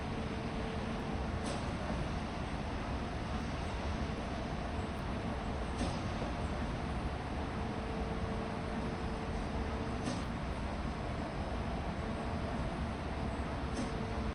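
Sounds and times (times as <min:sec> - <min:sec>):
factory ambience in an alley: 0:00.0 - 0:14.3.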